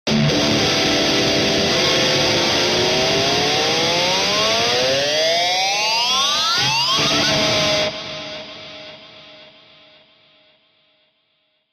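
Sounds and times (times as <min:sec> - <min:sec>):
electric guitar scream: 0:00.1 - 0:09.3.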